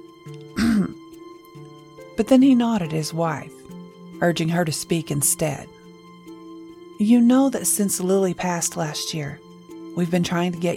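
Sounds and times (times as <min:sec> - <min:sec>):
speech: 0:00.2 - 0:00.5, 0:02.2 - 0:03.6, 0:04.2 - 0:05.8, 0:07.0 - 0:09.4, 0:10.0 - 0:10.7
person clearing throat: 0:00.5 - 0:01.0.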